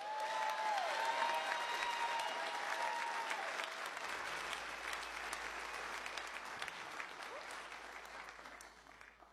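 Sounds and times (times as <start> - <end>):
audience whistles and cheers: 0.0 - 3.8
live audience applause: 0.0 - 9.3.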